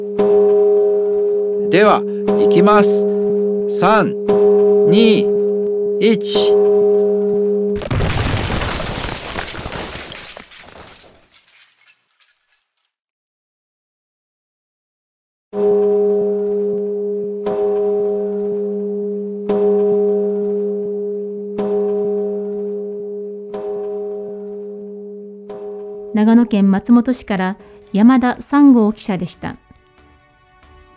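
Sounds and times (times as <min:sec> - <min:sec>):
deep New Year's Eve temple bell in Matsumoto Nagano Japan struck by wooden log: 0:00.2 - 0:07.7, 0:15.6 - 0:18.8, 0:19.5 - 0:26.1
speech: 0:01.7 - 0:03.2, 0:03.7 - 0:05.4, 0:06.0 - 0:06.9, 0:26.2 - 0:29.6
loud crashing burst: 0:07.8 - 0:11.4.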